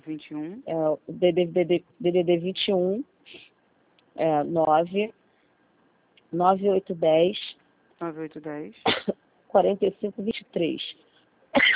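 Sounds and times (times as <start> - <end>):
speech: 0.1 - 3.5, 4.2 - 5.2, 6.3 - 11.0
harsh throaty raspy coughing fit: 8.9 - 9.2, 11.6 - 11.7.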